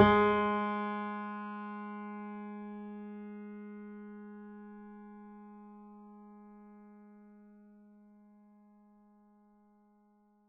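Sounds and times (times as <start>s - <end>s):
mini grand piano: 0.0s - 3.0s.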